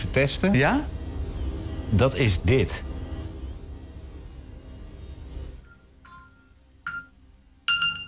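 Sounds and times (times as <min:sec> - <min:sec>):
low rumble: 0:00.0 - 0:05.9
speech: 0:00.2 - 0:01.0, 0:01.9 - 0:02.9.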